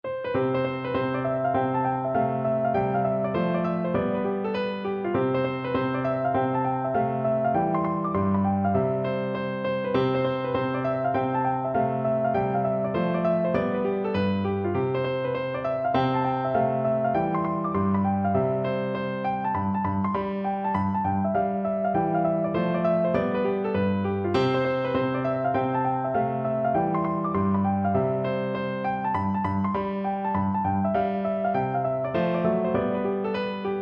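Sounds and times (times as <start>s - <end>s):
piano folk tune: 0.0s - 33.8s.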